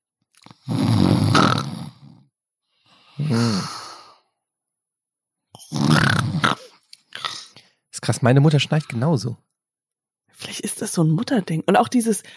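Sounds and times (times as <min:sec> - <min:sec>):
person imitating snoring: 0:00.4 - 0:02.3, 0:03.2 - 0:04.3, 0:05.6 - 0:07.6
speech: 0:03.2 - 0:03.8, 0:08.1 - 0:09.5, 0:10.8 - 0:12.3.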